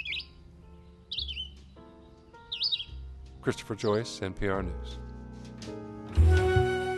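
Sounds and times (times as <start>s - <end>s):
vireo song played through a phone's small speaker: 0.0s - 0.4s, 1.1s - 1.6s, 2.5s - 3.0s
speech: 3.4s - 5.1s.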